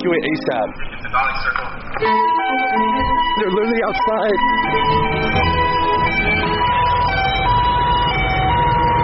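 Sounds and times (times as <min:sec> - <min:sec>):
steady low rumble of traffic: 0:00.0 - 0:09.0
speech: 0:00.1 - 0:05.6
sheriff vehicle sirens wailing in a residential community during an evacuation: 0:02.0 - 0:09.0.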